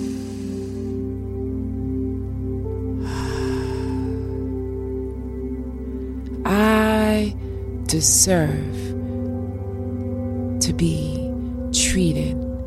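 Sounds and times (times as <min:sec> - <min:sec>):
deep inhale during a guided affirmation exercise: 0:00.0 - 0:01.2, 0:03.0 - 0:04.7
steady sustained low musical drone: 0:00.0 - 0:12.6
speech: 0:07.9 - 0:08.9, 0:10.8 - 0:11.1, 0:12.0 - 0:12.4.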